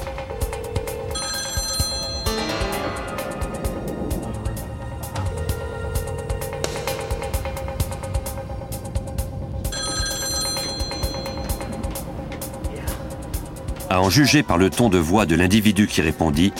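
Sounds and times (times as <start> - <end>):
low rumbling background: 0.0 - 16.4
telephone ringing with electronic trill: 0.7 - 3.8, 9.7 - 12.1
speech: 14.0 - 16.5.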